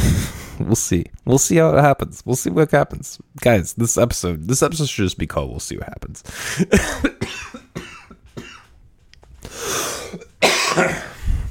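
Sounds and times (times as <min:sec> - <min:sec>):
speech: 0:00.6 - 0:07.6, 0:10.8 - 0:11.1
person coughing: 0:06.5 - 0:08.7, 0:09.8 - 0:11.2.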